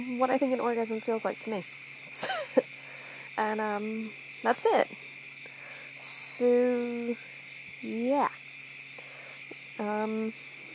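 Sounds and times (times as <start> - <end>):
speech: 0.0 - 2.7, 3.4 - 5.1, 6.4 - 8.4, 9.8 - 10.4
crickets and grasshoppers chirping outdoors at night: 0.0 - 10.7.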